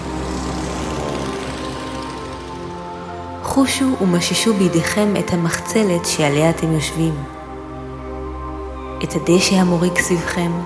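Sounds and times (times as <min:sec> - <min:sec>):
propeller airplane passing overhead droning: 0:00.0 - 0:05.4
speech: 0:03.6 - 0:07.4, 0:09.0 - 0:10.6.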